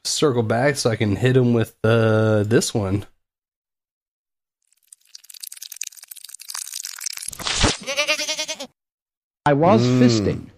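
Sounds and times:
speech: 0.2 - 3.1, 9.5 - 10.5
goat bleating: 7.8 - 8.8.

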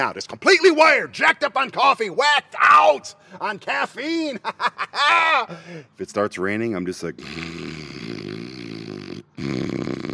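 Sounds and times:
speech: 0.0 - 7.8, 9.4 - 9.9
laughter: 4.2 - 5.6
snoring inside a van: 7.3 - 10.1.

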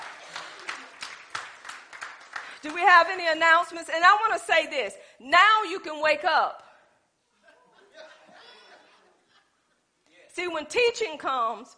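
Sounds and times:
laughter: 0.0 - 1.3, 7.3 - 9.8
group of people clapping in rhythm: 0.0 - 3.3
speech: 2.6 - 6.6, 10.4 - 11.7.

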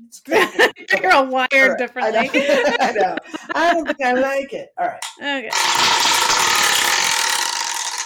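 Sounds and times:
speech: 0.1 - 6.2
laughter: 0.3 - 1.2, 2.0 - 4.4
hand-spun new spinning wheel contraption clicking against a pawl: 5.5 - 8.0.

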